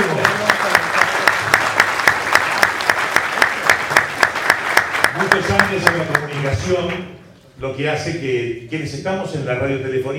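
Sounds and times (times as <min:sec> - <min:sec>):
audience applause at an awards ceremony: 0:00.0 - 0:06.7
speech: 0:05.7 - 0:10.1.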